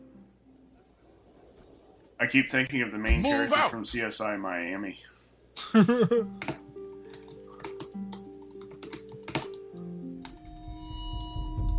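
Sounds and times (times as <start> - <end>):
speech: 2.2 - 6.6
computer keyboard typing: 6.3 - 10.6.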